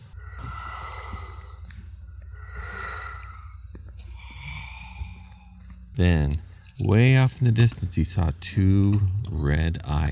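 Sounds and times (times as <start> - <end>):
slow heavy raspy breathing inside a cave: 0.0 - 6.9
steady low rumble: 0.0 - 7.6
speech: 6.0 - 10.0.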